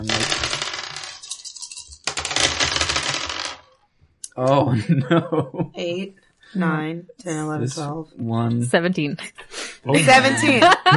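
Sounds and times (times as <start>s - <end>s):
rat dice clattering across a hard surface in a tabletop role-playing game: 0.0s - 3.7s
laughter: 4.4s - 5.7s, 9.9s - 10.9s
speech: 4.4s - 10.9s.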